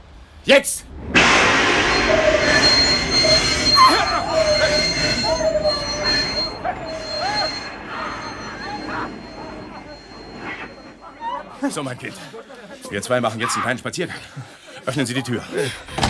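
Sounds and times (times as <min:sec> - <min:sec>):
speech: 0:00.4 - 0:01.1, 0:11.6 - 0:16.0
passenger train wheels squealing under emergency braking: 0:00.7 - 0:12.4.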